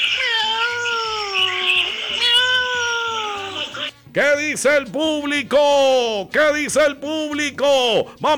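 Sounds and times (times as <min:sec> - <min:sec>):
person imitating cat meows: 0:00.1 - 0:03.8
speech: 0:04.2 - 0:08.3.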